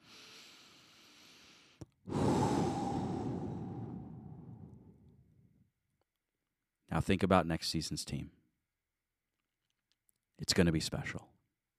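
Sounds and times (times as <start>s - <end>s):
slow deep breath: 0.0s - 5.2s
speech: 7.0s - 8.4s, 10.4s - 11.3s.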